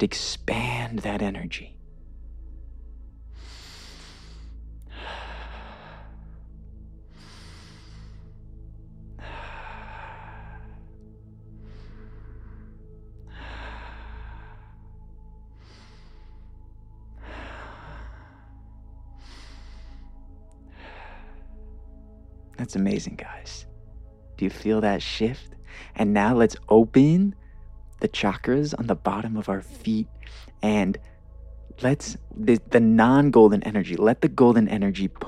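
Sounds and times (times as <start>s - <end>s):
speech: 0.0s - 1.8s, 22.7s - 23.7s, 24.4s - 27.4s, 28.0s - 31.1s, 31.8s - 35.2s
low steady hum: 0.0s - 35.2s
person taking deep breaths during a guided energy exercise: 3.2s - 22.5s, 23.2s - 26.0s, 30.1s - 32.5s.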